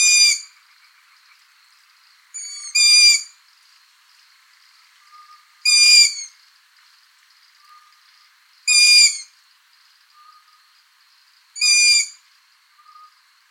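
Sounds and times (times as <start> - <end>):
Long-eared Owl squealing: 0.0 - 0.5, 2.4 - 3.3, 5.7 - 6.3, 8.7 - 9.3, 11.6 - 12.2.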